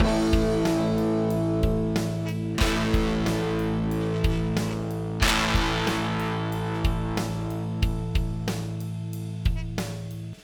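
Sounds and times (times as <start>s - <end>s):
guitar through Donner Extrem Drive pedal with wet effect: 0.0s - 9.2s.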